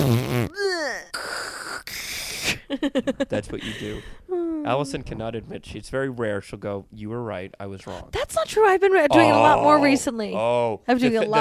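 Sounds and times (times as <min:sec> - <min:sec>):
voice imitating fart noises: 0:00.0 - 0:02.6
speech: 0:02.7 - 0:11.4.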